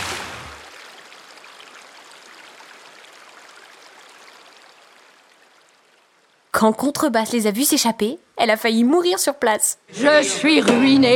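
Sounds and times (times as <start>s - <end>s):
river water flowing with a continuous rushing babble: 0.0s - 7.6s
speech: 6.6s - 11.1s.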